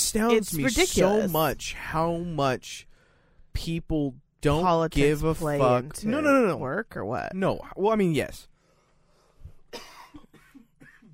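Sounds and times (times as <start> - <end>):
speech: 0.1 - 2.9, 3.6 - 8.5, 9.7 - 9.9
coughing fit with throat clearing: 9.7 - 11.1.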